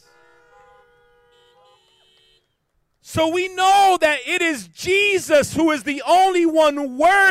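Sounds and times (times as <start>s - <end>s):
several car horns honking: 0.0s - 3.4s
speech: 3.1s - 7.2s.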